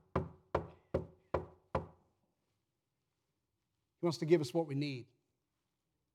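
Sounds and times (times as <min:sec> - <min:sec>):
knocking on a wooden door: 0:00.0 - 0:02.0
speech: 0:04.0 - 0:05.2.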